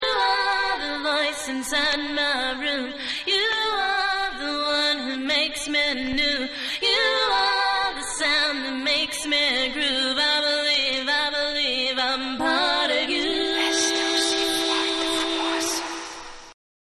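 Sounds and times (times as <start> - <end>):
a cappella singing: 0.0 - 16.6.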